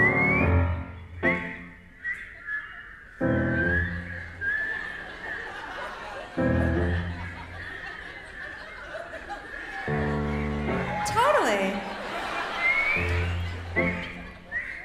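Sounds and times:
several people whistling a melody together: 0:00.0 - 0:05.9, 0:12.2 - 0:14.8
laughter and chuckling: 0:04.2 - 0:10.8, 0:11.7 - 0:14.6.

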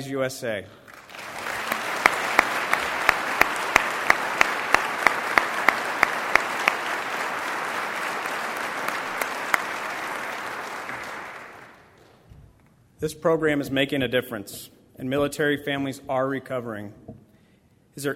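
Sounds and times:
speech: 0:00.0 - 0:00.8, 0:13.0 - 0:17.1, 0:18.0 - 0:18.1
crowd applauding: 0:00.8 - 0:12.2.

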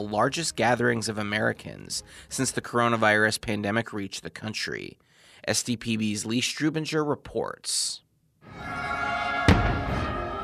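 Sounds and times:
speech: 0:00.0 - 0:08.9
single sharp firework bang at a fireworks display over Mount Rushmore: 0:09.4 - 0:10.2.

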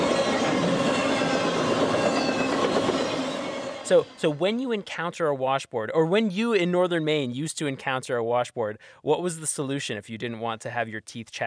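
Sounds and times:
train roaring over corrugated rails: 0:00.0 - 0:04.7
speech: 0:03.9 - 0:11.4.

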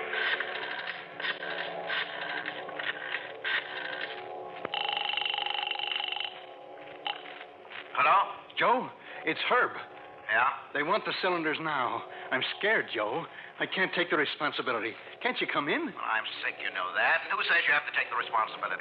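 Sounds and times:
steady telephone tone: 0:00.1 - 0:07.4
telephone ringing tone on the line: 0:02.2 - 0:07.4
speech: 0:08.6 - 0:18.7.

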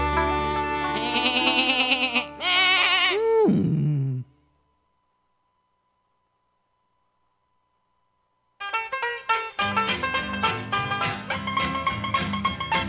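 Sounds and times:
music: 0:00.0 - 0:02.6, 0:08.6 - 0:12.8
billy goat bleating: 0:00.5 - 0:03.2.

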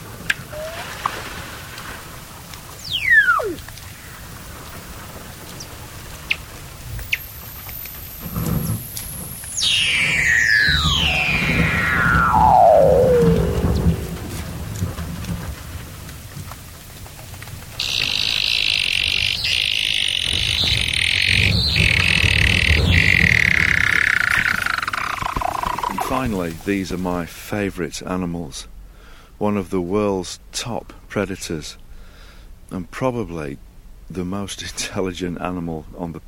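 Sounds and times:
seals calling underwater at the edges of coastal sea ice: 0:00.3 - 0:14.4, 0:17.8 - 0:26.8
speech: 0:26.6 - 0:28.8, 0:29.4 - 0:31.8, 0:32.7 - 0:36.2.

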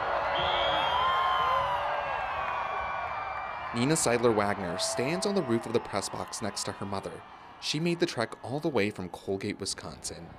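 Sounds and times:
whoops: 0:00.0 - 0:03.7, 0:04.5 - 0:06.0
large stadium crowd cheering during total solar eclipse: 0:00.0 - 0:10.3
shrill whistles: 0:00.3 - 0:01.8
speech: 0:03.7 - 0:10.3.

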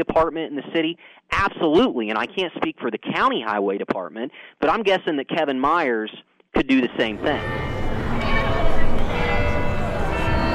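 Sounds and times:
speech: 0:00.0 - 0:07.8
faint murmur of voices: 0:07.1 - 0:10.5
courthouse clock tower bells chiming: 0:07.2 - 0:10.5.

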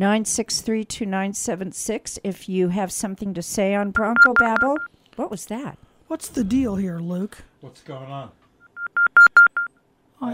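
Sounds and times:
speech: 0:00.0 - 0:08.4
telephone keypad dual-tone beeps: 0:04.0 - 0:04.9, 0:08.6 - 0:09.7.

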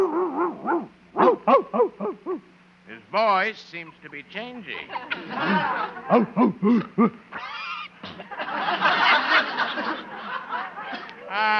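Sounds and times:
dog in a kennel yelping: 0:00.0 - 0:02.5
speech: 0:03.1 - 0:07.6
laughter: 0:03.9 - 0:11.5.

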